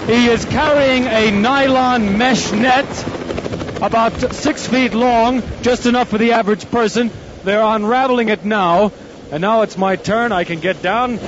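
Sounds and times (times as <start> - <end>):
rescue helicopter hovering over a glacier in the Bernese Alps: 0.0 - 11.2
speech: 0.1 - 3.2, 3.8 - 11.2.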